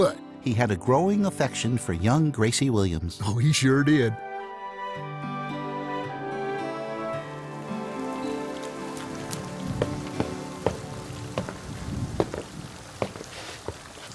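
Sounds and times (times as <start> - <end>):
speech: 0.0 - 4.3
soft sustained musical tones: 3.8 - 11.2
steady rain pattering: 7.2 - 14.1.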